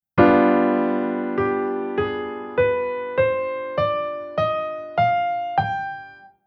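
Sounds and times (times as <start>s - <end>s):
dominant chord scale: 0.2s - 6.3s.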